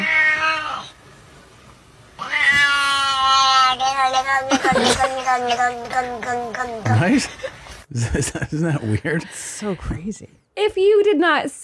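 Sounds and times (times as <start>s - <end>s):
cat meowing played back from a video: 0.0s - 0.9s, 2.2s - 7.0s
speech: 4.3s - 11.6s.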